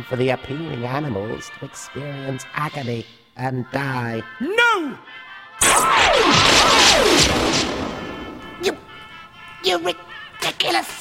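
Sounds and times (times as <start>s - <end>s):
speech: 0.0s - 7.8s, 8.6s - 8.8s, 9.6s - 11.0s
sharp pop: 5.6s - 9.0s
descending whistling tones: 5.6s - 9.1s
gunshot striking a control console: 5.6s - 9.1s
crackling impact on a control console: 5.6s - 9.2s.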